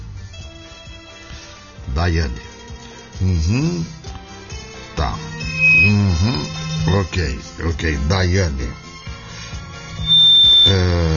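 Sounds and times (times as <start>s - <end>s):
speech: 2.0s - 2.5s, 3.2s - 4.0s, 5.0s - 8.8s, 10.6s - 11.1s
single high electronic beep: 5.1s - 7.2s, 10.0s - 10.9s.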